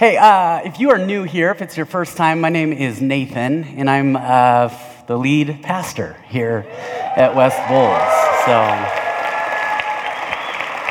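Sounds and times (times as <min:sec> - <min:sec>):
speech: 0:00.0 - 0:09.0
church congregation clapping: 0:07.6 - 0:10.8.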